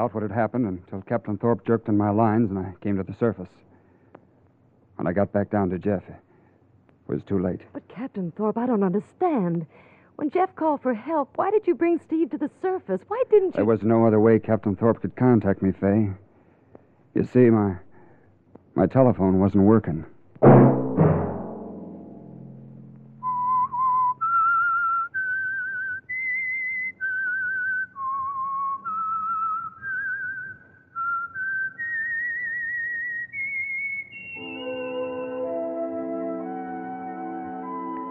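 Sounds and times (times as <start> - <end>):
speech: 0.0 - 3.7, 5.0 - 6.2, 7.1 - 16.2, 17.2 - 17.8, 18.8 - 20.6
sustained orchestral chords: 20.4 - 23.6, 34.4 - 38.1
lone whistler whistling a slow theme melody: 23.2 - 38.1.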